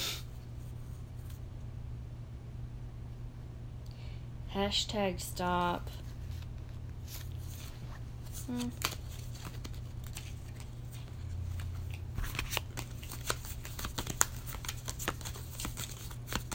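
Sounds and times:
steady low hum: 0.0s - 16.5s
speech: 4.6s - 6.0s, 8.5s - 8.9s
playing cards being shuffled and handled: 6.2s - 16.5s.

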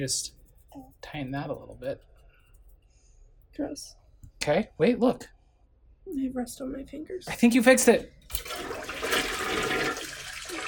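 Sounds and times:
speech: 0.0s - 2.1s, 3.6s - 5.4s, 6.1s - 9.8s
toilet flushing: 8.3s - 10.6s.

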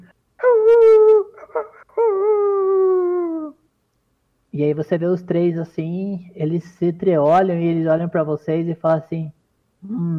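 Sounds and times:
person imitating a wolf howling: 0.4s - 3.6s
speech: 4.6s - 10.1s.

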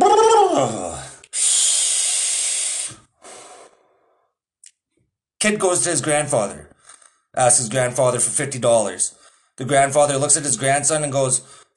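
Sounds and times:
person inhaling and exhaling from a vape: 1.3s - 4.2s
speech: 5.4s - 6.7s, 7.4s - 11.6s.

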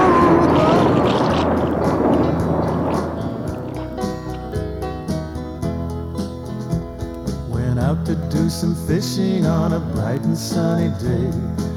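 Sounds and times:
oars rowing a raft through rough water on a lake: 0.0s - 4.8s
tuneful musical passage: 0.0s - 11.7s
speech: 8.5s - 11.7s.

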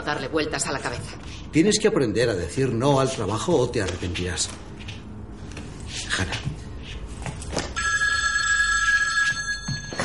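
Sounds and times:
speech: 0.0s - 4.8s
soft shuffling: 3.1s - 7.7s
telephone bell ringing: 7.8s - 10.0s.

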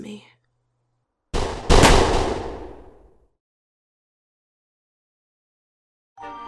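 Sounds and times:
speech: 0.0s - 0.3s
loud burst of gunfire: 1.4s - 3.1s.

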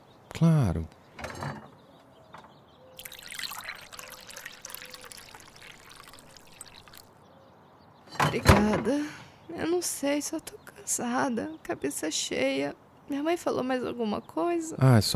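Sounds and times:
speech: 0.4s - 1.0s, 8.3s - 15.1s
glass clink: 3.0s - 5.4s
water poured steadily into a glass: 3.0s - 7.1s.

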